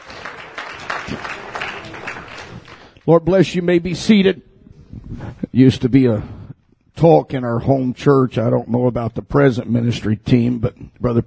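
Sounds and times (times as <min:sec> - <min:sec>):
church congregation clapping hands: 0:00.0 - 0:03.6
speech: 0:03.1 - 0:04.5, 0:05.1 - 0:06.4, 0:07.0 - 0:11.2.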